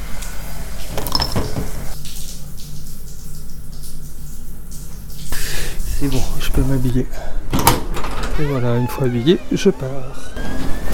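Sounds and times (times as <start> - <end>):
shower water running: 0.0 - 7.3
speech: 6.0 - 7.4, 8.4 - 10.7.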